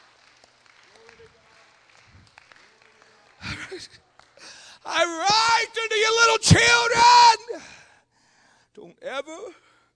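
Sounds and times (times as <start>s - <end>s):
crowd applause: 0.0s - 4.8s
speech: 3.8s - 4.1s, 4.8s - 7.8s, 8.8s - 9.7s.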